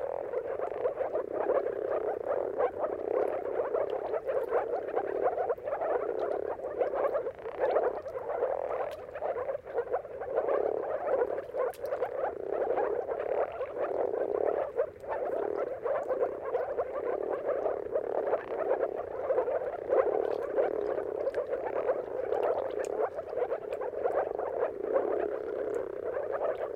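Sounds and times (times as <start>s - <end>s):
moor frog chorus gurgling: 0.0s - 26.7s.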